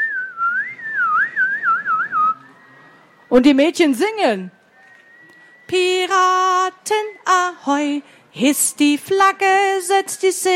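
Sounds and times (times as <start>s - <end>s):
group of boys whistling a tune: 0.0s - 3.6s, 4.5s - 7.5s
speech: 3.4s - 4.6s, 5.7s - 10.5s.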